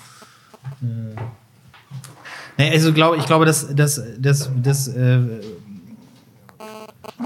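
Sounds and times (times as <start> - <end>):
speech: 0.8 - 1.4, 2.6 - 5.7
telephone beeping with a steady electronic tone: 6.6 - 7.2.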